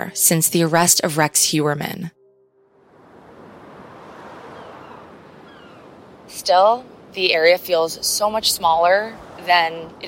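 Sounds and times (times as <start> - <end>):
speech: 0.0 - 2.2, 6.4 - 10.0
ocean surf at Gilgo Beach along Ocean Parkway: 2.8 - 10.0.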